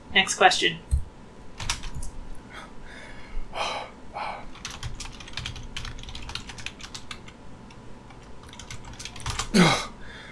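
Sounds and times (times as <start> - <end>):
speech: 0.2 - 0.9
rapid computer keyboard typing: 1.6 - 2.1, 4.5 - 9.6.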